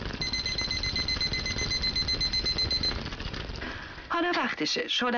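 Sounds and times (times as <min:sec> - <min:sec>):
kitchen timer high-pitched electronic beeps: 0:00.2 - 0:03.1
speech: 0:04.6 - 0:05.1.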